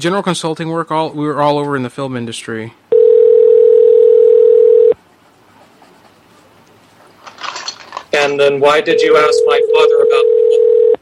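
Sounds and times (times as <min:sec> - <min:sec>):
speech: 0:00.0 - 0:02.8, 0:08.2 - 0:10.3
telephone ringing: 0:02.9 - 0:05.0, 0:08.6 - 0:10.9.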